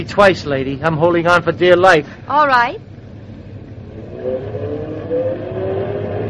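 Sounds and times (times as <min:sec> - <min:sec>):
speech: 0:00.0 - 0:02.9
car engine revving and accelerating away: 0:03.2 - 0:06.2.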